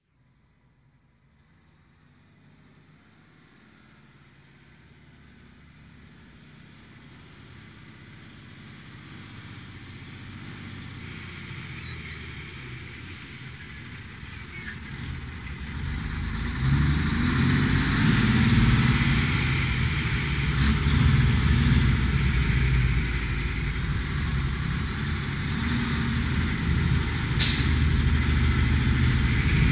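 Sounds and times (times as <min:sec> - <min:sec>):
heavy truck passing: 0:04.8 - 0:29.7.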